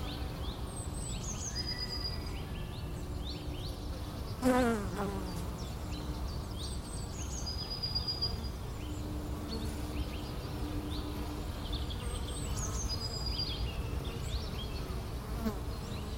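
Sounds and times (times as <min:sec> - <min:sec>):
bee flying past: 0:00.0 - 0:16.1
faint bird chirps and thin whistles: 0:00.0 - 0:16.1
bees humming and buzzing: 0:02.9 - 0:07.6, 0:08.2 - 0:16.1.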